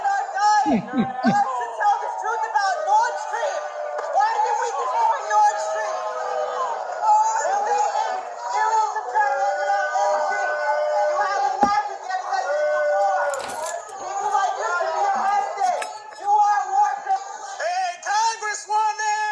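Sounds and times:
laughter: 0.0 - 2.4
scattered shouts from crowd: 0.0 - 17.6
large crowd booing and jeering at hecklers at an event in Manhattan: 0.0 - 19.3.

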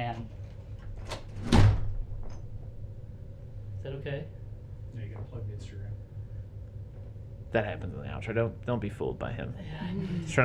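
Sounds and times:
door shutting with a thud as guests leave: 1.0 - 2.5
speech: 3.8 - 6.1, 7.5 - 10.4.

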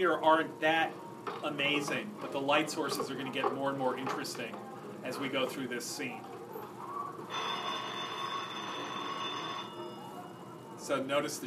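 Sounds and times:
speech: 0.0 - 6.4, 10.9 - 11.4
telephone ringing in a film scene: 7.2 - 10.8.

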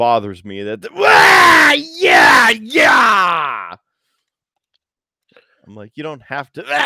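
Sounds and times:
speech: 0.0 - 3.8, 5.7 - 6.8
person mimicking a wrestling ring announcer's screamed introduction: 0.8 - 3.8, 6.6 - 6.8.

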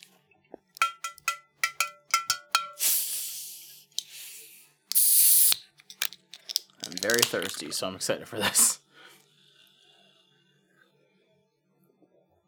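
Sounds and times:
clicks and crackles of a soda pop bottle being opened: 0.8 - 3.0, 4.9 - 7.8
speech: 7.0 - 8.8.

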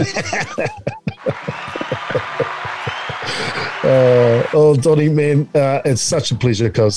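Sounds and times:
speech: 0.0 - 1.0, 3.3 - 6.9
laughter-like sounds: 0.0 - 3.8
small group of people clapping: 0.0 - 5.2.

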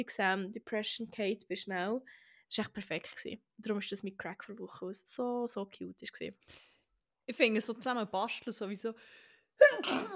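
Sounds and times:
speech: 0.0 - 6.7, 7.3 - 10.1
sneeze: 9.6 - 10.1.

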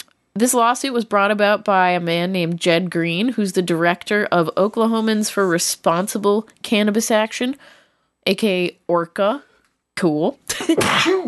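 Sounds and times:
speech: 0.4 - 11.2
sneeze: 10.5 - 11.2.

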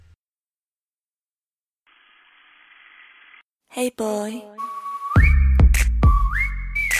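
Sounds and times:
speech: 3.7 - 4.7
clear high whistled melody in a pop track: 4.6 - 6.9.

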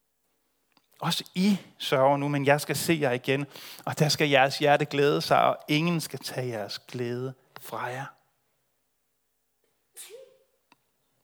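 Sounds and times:
speech: 1.0 - 8.2
person sneezing: 10.0 - 10.5.

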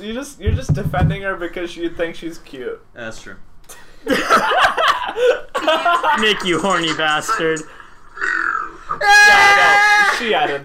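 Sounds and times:
speech: 0.0 - 8.4, 9.0 - 10.6
laughter: 4.0 - 8.2
woman burping loudly with a rasping belch: 6.9 - 9.3.

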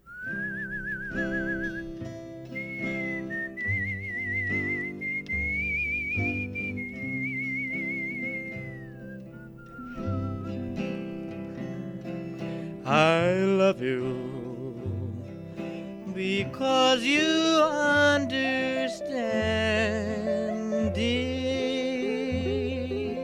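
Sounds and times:
person whistling a slow wavering melody with vibrato: 0.0 - 12.5, 17.2 - 23.2
soft band accompaniment of guitar and bass: 0.0 - 23.2.

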